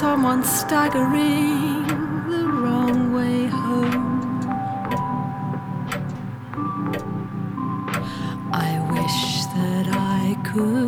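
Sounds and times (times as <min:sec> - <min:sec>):
clock chiming the quarter hour: 0:00.0 - 0:10.8
speech: 0:00.2 - 0:02.1.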